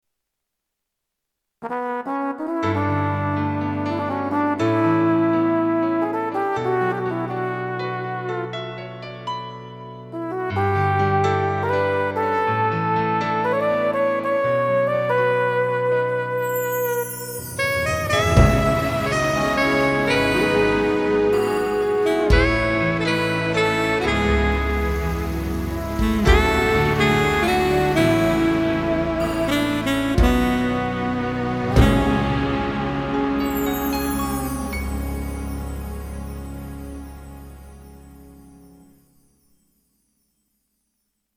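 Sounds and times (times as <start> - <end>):
flugelhorn on a keyboard arranger: 1.6 - 9.0, 10.1 - 38.7
saxophone on a keyboard arranger: 10.3 - 37.8.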